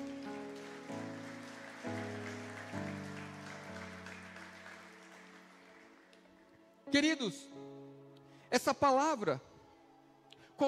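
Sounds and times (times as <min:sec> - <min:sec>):
crowd applauding after a prayer: 0:00.0 - 0:06.7
speech: 0:06.9 - 0:07.6, 0:08.5 - 0:09.5.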